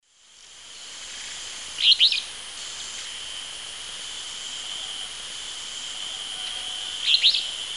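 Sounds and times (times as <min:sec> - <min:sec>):
Empidonax alnorum singing in Eastern Lowlands of South America: 0:01.1 - 0:03.2, 0:06.0 - 0:07.6.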